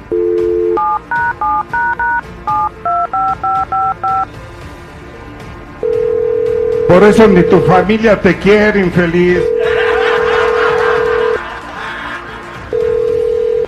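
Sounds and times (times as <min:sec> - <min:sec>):
telephone keypad tones as a number is dialed: 0:00.1 - 0:04.3, 0:05.8 - 0:07.7, 0:12.8 - 0:13.6
speech: 0:06.9 - 0:09.6
laughter: 0:09.6 - 0:13.1.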